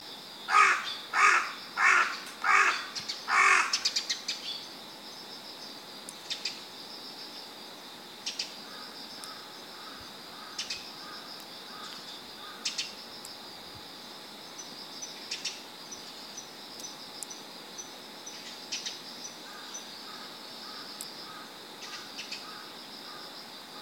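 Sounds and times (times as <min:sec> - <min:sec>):
Carrion crow Corvus corone giving harsh loud caws: 0:00.5 - 0:03.9, 0:08.7 - 0:12.7, 0:19.5 - 0:23.2.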